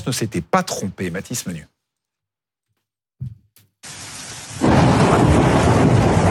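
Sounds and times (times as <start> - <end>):
speech: 0.1 - 1.7
hailstones several centimetres in diameter pelting down in the Ardèche France: 3.8 - 6.2
low rumble of thunder in the Ardèche France: 4.5 - 6.2.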